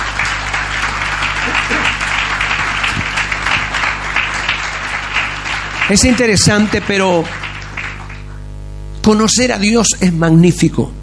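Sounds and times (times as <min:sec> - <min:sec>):
audience applauding: 0:00.0 - 0:08.4
low hum: 0:00.0 - 0:11.0
speech: 0:05.9 - 0:07.4, 0:09.0 - 0:11.0.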